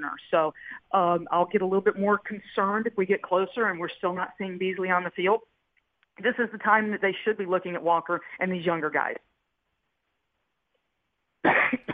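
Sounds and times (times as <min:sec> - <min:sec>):
speech: 0:00.0 - 0:05.5, 0:06.2 - 0:09.3
person coughing: 0:11.4 - 0:11.9.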